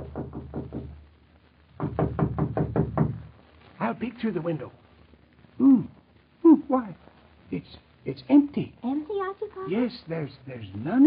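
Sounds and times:
knocking on a wooden door: 0.0s - 1.0s, 1.8s - 3.3s
speech: 3.9s - 4.8s, 6.7s - 11.0s.

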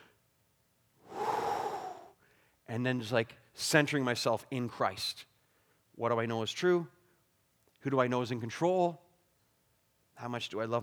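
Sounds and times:
deep breath taken to calm anxiety: 1.0s - 2.6s
speech: 2.7s - 5.3s, 6.0s - 7.0s, 7.8s - 9.0s, 10.2s - 10.8s.

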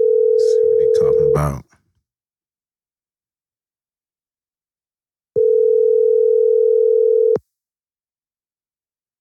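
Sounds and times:
ringback tone of an outgoing telephone call: 0.0s - 1.5s, 5.4s - 7.4s
speech: 1.4s - 1.7s.

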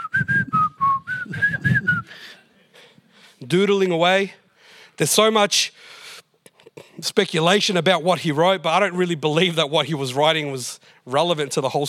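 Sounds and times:
person whistling a light, bouncy tune: 0.0s - 2.2s
speech: 3.4s - 4.4s, 5.0s - 6.0s, 7.0s - 11.8s.

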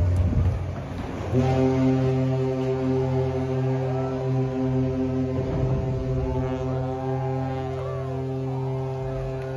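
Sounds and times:
commotion: 0.0s - 9.5s
deep ship's horn blaring during sideways ship launch: 0.0s - 9.5s
rushing splash of vessel launched sideways into water: 0.0s - 9.5s.

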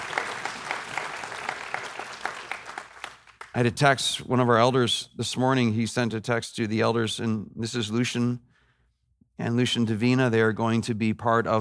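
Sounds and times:
audience applauding in a room: 0.0s - 3.6s
speech: 3.6s - 8.5s, 9.4s - 11.5s.

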